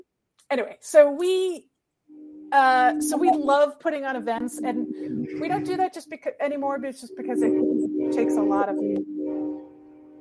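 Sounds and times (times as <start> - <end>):
speech: 0.5 - 9.2
passing train horn droning: 2.1 - 3.6, 4.4 - 5.8, 7.1 - 10.2.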